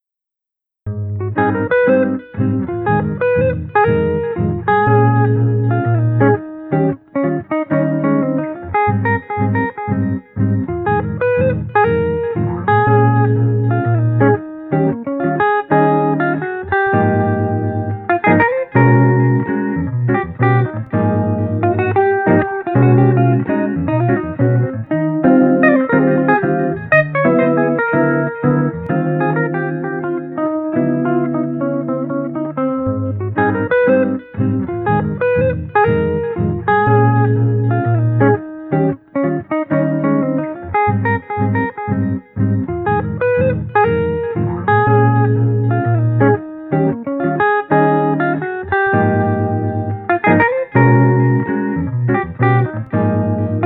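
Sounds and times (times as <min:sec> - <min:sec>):
cheerful street guitar melody: 0:00.9 - 0:53.6.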